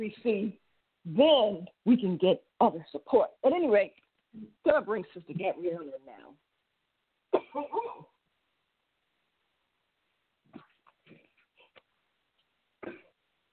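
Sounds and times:
speech: 0.0 - 6.4, 7.3 - 8.1
person clearing throat: 7.3 - 8.2, 12.8 - 13.2.

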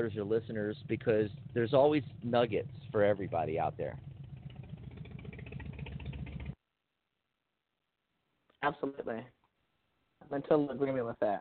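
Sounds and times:
speech: 0.0 - 4.1, 8.6 - 9.4, 10.2 - 11.3
motorcycle engine rumbling: 0.0 - 6.6.

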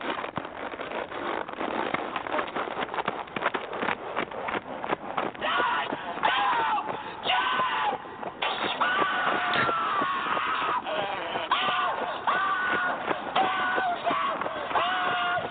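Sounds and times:
horse hooves while horse is jogged in hand: 0.0 - 15.4.

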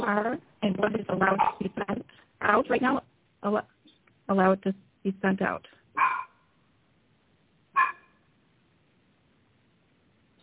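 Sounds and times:
speech: 0.0 - 3.7, 4.3 - 6.2
puppy yapping: 1.4 - 1.6, 6.0 - 6.4, 7.8 - 8.2.

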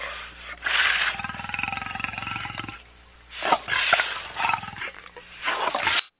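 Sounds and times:
lion roaring: 0.7 - 2.8, 3.4 - 5.8.

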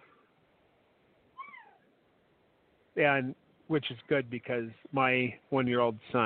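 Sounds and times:
soft hiss: 0.0 - 6.2
cat meowing: 1.4 - 1.9
speech: 3.0 - 6.2.

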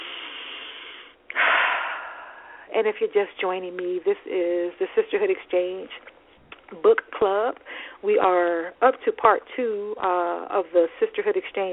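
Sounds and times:
soft steady hiss: 0.0 - 2.6
deep breath: 0.0 - 2.7, 7.7 - 8.0
speech: 2.7 - 6.1, 6.7 - 11.7.

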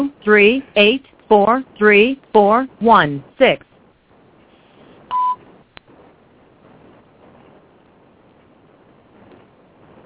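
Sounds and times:
speech: 0.0 - 3.7
telephone keypad tone from a wrong button pressed: 5.1 - 5.4.

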